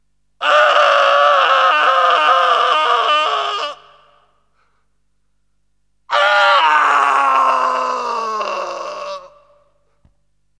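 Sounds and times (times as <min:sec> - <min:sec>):
man screaming: 0:00.4 - 0:04.1, 0:06.1 - 0:09.5.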